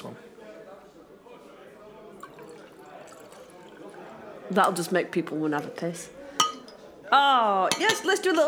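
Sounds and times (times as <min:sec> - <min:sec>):
liquid glugging as poured into an enamel mug outdoors by a fire near a river in a forest: 0:01.9 - 0:05.1
speech: 0:04.5 - 0:06.2, 0:07.1 - 0:08.4.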